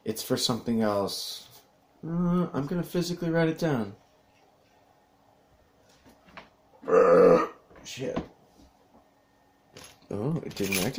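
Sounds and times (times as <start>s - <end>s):
speech: 0.1s - 4.0s, 6.8s - 8.3s, 9.8s - 10.9s
loud burp: 6.8s - 7.6s.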